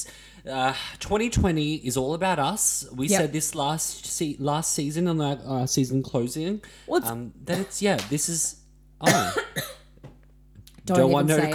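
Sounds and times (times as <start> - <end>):
speech: 0.0 - 9.7, 10.9 - 11.5
person coughing in rough bursts: 7.5 - 7.8, 9.1 - 9.9.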